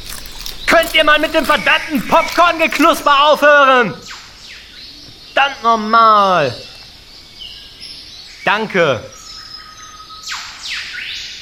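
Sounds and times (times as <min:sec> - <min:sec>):
speech: 0:00.7 - 0:04.2, 0:05.4 - 0:06.7, 0:08.4 - 0:09.2
Eastern Whipbird whip-crack call: 0:10.3 - 0:11.2.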